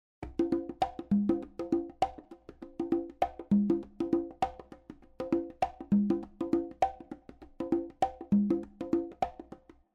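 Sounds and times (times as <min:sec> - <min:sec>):
conga drumming: 0:00.2 - 0:09.9.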